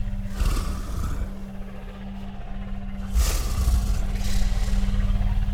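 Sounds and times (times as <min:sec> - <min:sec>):
person breathing passively: 0:00.1 - 0:01.8, 0:03.0 - 0:05.4.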